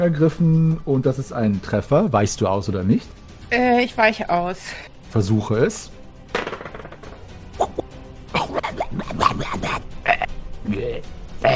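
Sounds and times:
speech: 0.0s - 6.0s
person burping: 7.6s - 10.4s, 11.4s - 11.5s.

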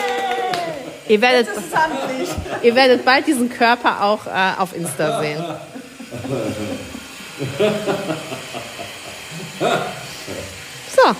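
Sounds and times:
indistinct voices murmuring: 0.0s - 7.5s
laughter: 0.0s - 10.6s
construction site broad hiss: 0.0s - 11.1s
speech: 1.1s - 8.7s, 9.6s - 11.1s.

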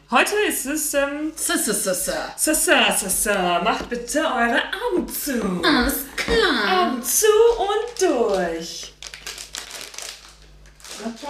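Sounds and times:
speech: 0.1s - 8.9s, 11.0s - 11.2s
stiff plastic snack bag being opened: 7.8s - 11.2s.

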